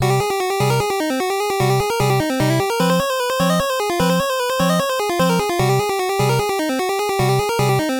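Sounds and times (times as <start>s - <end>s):
dungeon theme music: 0.0s - 7.9s.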